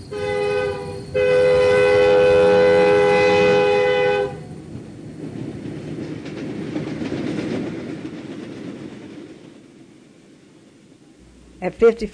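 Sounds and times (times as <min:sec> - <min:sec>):
train horn blaring: 0:00.0 - 0:04.6
train rumbling and clattering along the tracks: 0:00.0 - 0:12.1
speech: 0:11.8 - 0:12.1.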